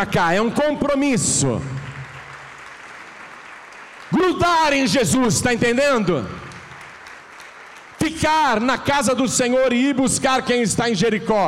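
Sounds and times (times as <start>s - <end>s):
speech: 0.0s - 1.9s, 4.1s - 6.4s, 8.1s - 11.4s
audience applauding: 0.9s - 9.3s.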